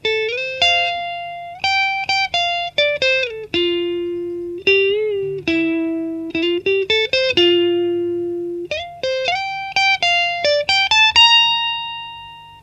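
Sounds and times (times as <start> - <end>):
clean Stratocaster neck pickup through Fender Frontman clean channel: 0.0 - 12.6.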